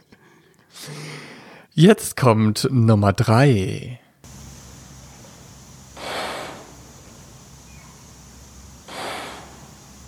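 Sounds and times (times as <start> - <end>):
speech: 1.8 - 4.0
faint steady hiss: 4.2 - 10.0
AI-generated soft airy breath: 4.3 - 10.0.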